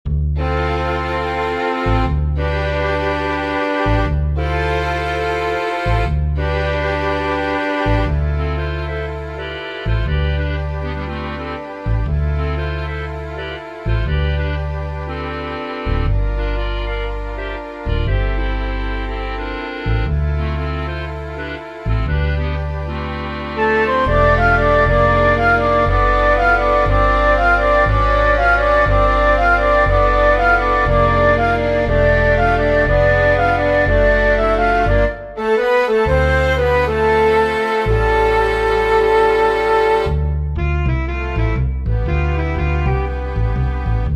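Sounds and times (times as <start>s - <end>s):
MIDI music mix: 0.1s - 44.1s.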